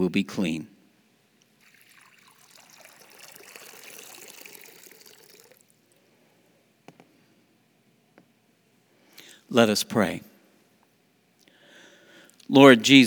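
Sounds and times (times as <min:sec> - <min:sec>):
speech: 0:00.0 - 0:00.8, 0:09.5 - 0:10.3, 0:12.5 - 0:13.0
water pouring with splashing trickle: 0:01.5 - 0:06.0.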